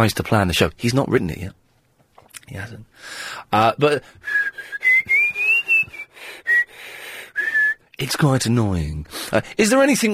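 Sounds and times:
speech: 0.0s - 1.6s, 2.5s - 4.6s, 8.0s - 10.1s
person whistling a wandering melody in a room: 4.2s - 6.8s, 7.4s - 7.8s.

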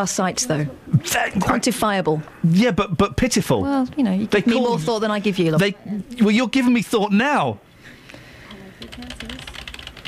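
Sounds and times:
speech: 0.0s - 7.7s
typing on a computer keyboard: 8.8s - 10.0s.

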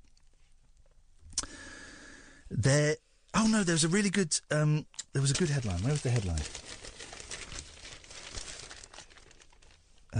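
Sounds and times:
speech: 2.5s - 6.8s
newspaper pages rustling and crinkling as someone leafs through them: 5.2s - 10.1s.

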